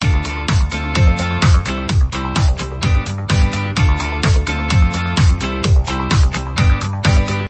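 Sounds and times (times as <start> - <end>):
music splash: 0.0 - 7.4.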